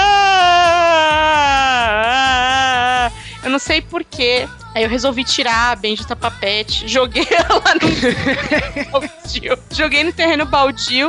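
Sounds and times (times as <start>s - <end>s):
person imitating loud wailing sobs: 0.0s - 3.2s, 7.1s - 9.2s
speech: 3.6s - 11.0s
laughter: 7.2s - 9.2s.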